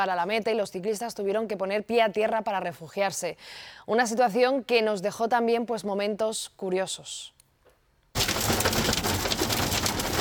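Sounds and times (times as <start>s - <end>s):
speech: 0.0s - 7.4s
hailstones from a damaging hailstorm drumming on a television crew's car roof: 8.2s - 10.1s.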